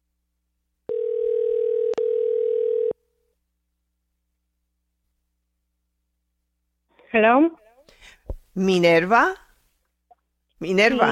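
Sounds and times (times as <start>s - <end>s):
telephone ring tone on an incoming call-in line: 0.9s - 3.0s
speech: 7.1s - 7.6s, 8.6s - 9.4s, 10.6s - 11.0s.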